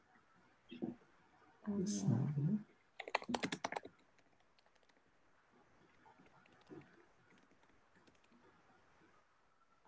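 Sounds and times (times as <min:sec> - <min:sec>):
speech: 0:01.7 - 0:02.7
keyboard clicks: 0:03.0 - 0:05.0, 0:05.9 - 0:08.4.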